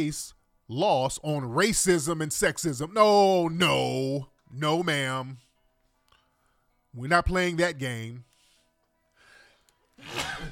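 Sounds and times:
speech: 0:00.0 - 0:05.4, 0:06.9 - 0:08.3, 0:10.0 - 0:10.5
person sneezing: 0:10.0 - 0:10.5.

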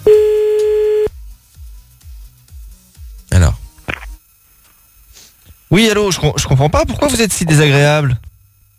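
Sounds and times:
telephone ringback tone while calling someone back: 0:00.1 - 0:01.1
speech: 0:05.7 - 0:08.3.

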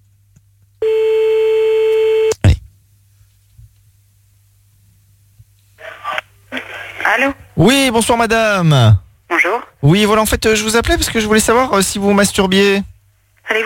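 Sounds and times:
telephone ringback tone: 0:00.8 - 0:02.3
speech: 0:07.2 - 0:09.0, 0:09.8 - 0:12.9.

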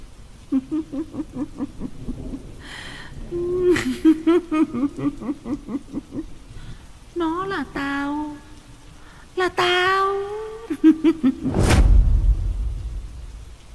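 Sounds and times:
rain in a storm: 0:00.0 - 0:13.7
wind in a storm: 0:00.0 - 0:13.7
speech: 0:00.5 - 0:06.4, 0:07.1 - 0:08.4, 0:09.4 - 0:11.9
thunder in a storm: 0:01.8 - 0:04.3, 0:11.4 - 0:13.7.

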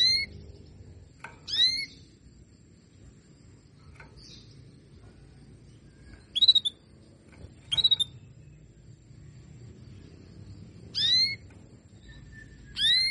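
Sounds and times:
female canary calls: 0:00.0 - 0:00.8, 0:01.4 - 0:02.1, 0:06.0 - 0:06.9, 0:07.6 - 0:08.5, 0:10.8 - 0:13.0
faint low hum: 0:00.0 - 0:13.0.

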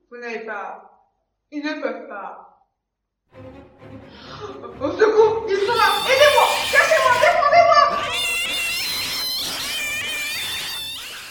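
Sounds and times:
speech: 0:00.1 - 0:02.5, 0:03.3 - 0:07.6
cats yowling and squealing: 0:05.6 - 0:11.2.

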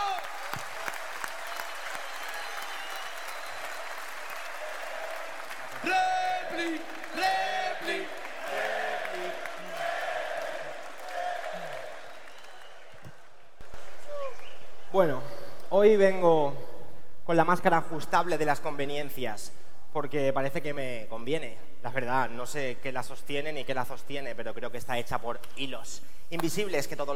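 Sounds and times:
audience clapping at a live show: 0:00.0 - 0:14.4
speech: 0:15.0 - 0:16.6, 0:17.3 - 0:27.1.

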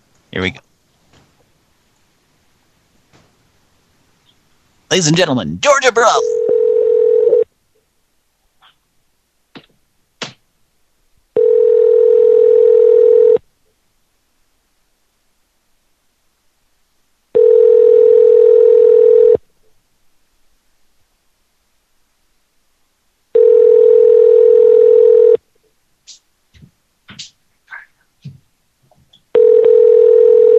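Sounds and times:
speech: 0:00.4 - 0:00.7, 0:04.9 - 0:06.4
telephone line tone while a call is placed: 0:06.2 - 0:07.5, 0:11.4 - 0:13.4, 0:17.4 - 0:19.4, 0:23.4 - 0:25.4, 0:29.4 - 0:30.5.

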